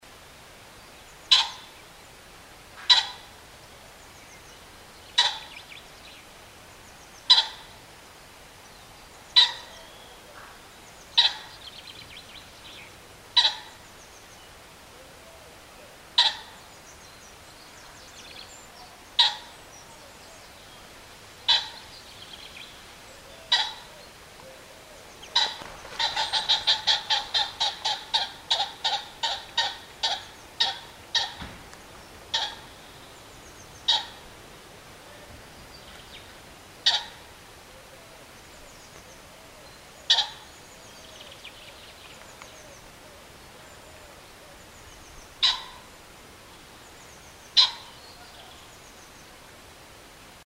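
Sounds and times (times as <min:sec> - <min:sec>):
nature sounds: 0:00.0 - 0:50.4
pheasant calling: 0:01.1 - 0:01.9, 0:02.8 - 0:03.4, 0:04.1 - 0:05.9, 0:07.1 - 0:07.8, 0:09.2 - 0:48.8.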